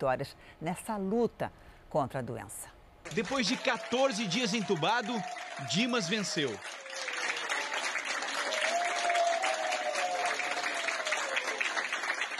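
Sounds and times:
speech: 0.0s - 7.2s
medical staff applauding a recovered patient: 3.0s - 12.3s.

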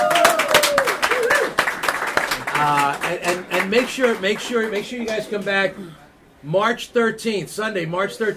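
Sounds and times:
people cheering: 0.0s - 5.1s
audience clapping: 0.0s - 5.5s
speech: 3.7s - 8.3s.

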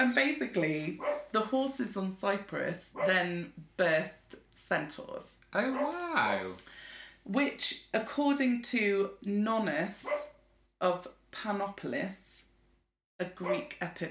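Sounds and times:
speech: 0.0s - 12.3s, 13.2s - 14.0s
female pet dog barking: 1.0s - 1.4s, 2.9s - 3.3s, 5.7s - 6.5s, 10.0s - 10.3s, 13.4s - 13.7s.

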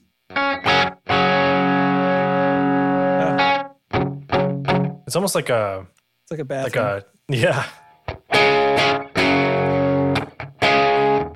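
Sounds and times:
clean electric guitar through effects pedal with reverb off: 0.3s - 5.0s, 8.1s - 11.3s
speech: 5.1s - 7.8s.

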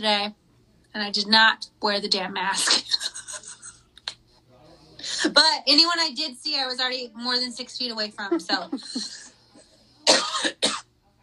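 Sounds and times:
speech: 0.0s - 0.4s, 1.0s - 3.2s, 5.2s - 9.2s
harsh wet productive coughing from allergies: 2.6s - 3.8s, 10.0s - 10.9s
laughter: 2.9s - 3.9s, 8.2s - 9.8s.

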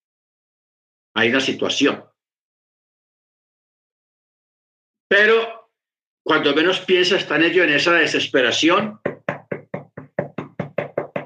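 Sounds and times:
speech: 1.2s - 2.1s, 5.1s - 5.6s, 6.3s - 9.1s
rapid sharp knocking on a door: 8.8s - 11.2s.

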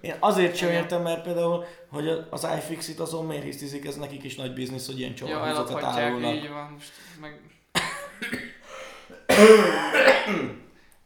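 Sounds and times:
speech: 0.0s - 8.5s, 9.4s - 10.6s
person coughing: 7.8s - 10.7s
rough throat clearing: 7.8s - 10.7s.

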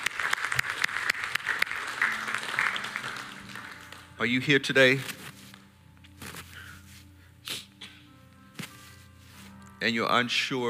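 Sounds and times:
church congregation clapping hands in praise during a service: 0.0s - 4.5s
speech: 4.2s - 5.2s, 9.8s - 10.6s.

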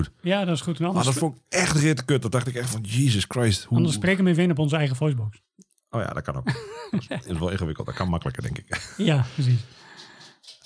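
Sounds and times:
speech: 0.0s - 9.9s
laughter: 6.5s - 9.8s
dog's paws tapping as it trots: 9.3s - 10.6s.

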